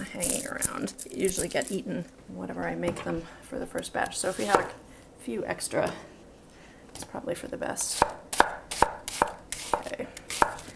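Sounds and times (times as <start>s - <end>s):
speech: 0.1s - 6.1s, 7.0s - 8.2s
knife chopping onion on a cutting board: 7.9s - 10.6s.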